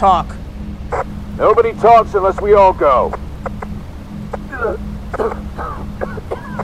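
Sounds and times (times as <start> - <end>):
speech: 0.0 - 0.4, 1.0 - 3.2, 4.6 - 5.8
steady low rumble: 0.0 - 6.6
person coughing hard from the stink of polluted water: 4.5 - 6.6
raspy throat-clearing: 4.5 - 6.6.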